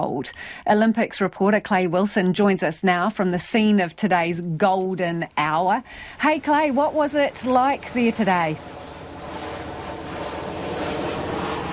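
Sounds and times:
speech: 0:00.0 - 0:08.9
airplane engine roar passing overhead: 0:05.7 - 0:11.7.

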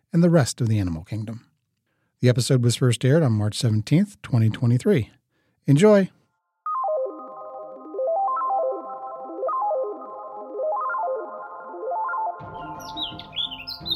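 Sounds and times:
speech: 0:00.1 - 0:01.5, 0:02.2 - 0:06.2
steady warbling tone rising and falling in slow sweeps: 0:06.7 - 0:12.4
songbirds chirping: 0:12.5 - 0:13.9.

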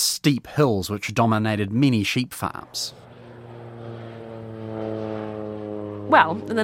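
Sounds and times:
speech: 0:00.2 - 0:03.1, 0:06.1 - 0:06.6
propeller aircraft engine droning during aerial top dressing with superphosphate fertiliser: 0:01.4 - 0:06.6.

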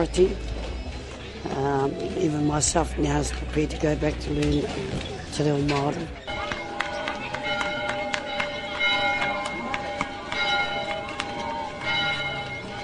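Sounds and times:
speech: 0:00.0 - 0:00.5, 0:01.4 - 0:06.3
faint murmur of people: 0:00.0 - 0:12.8
outdoor bustle: 0:00.0 - 0:12.8
church bells at the Rātana pā ringing for the church service: 0:06.3 - 0:12.8.

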